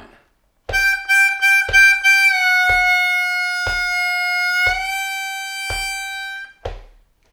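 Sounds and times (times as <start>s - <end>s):
harmonica lick: 0.7s - 6.6s.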